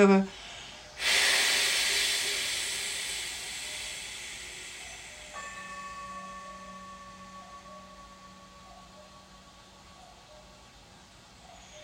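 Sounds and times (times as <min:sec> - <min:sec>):
soft steady hum with a faint tonal drone: 0:00.0 - 0:11.8
long deep breath through the nose, held, then exhaled: 0:00.3 - 0:05.8.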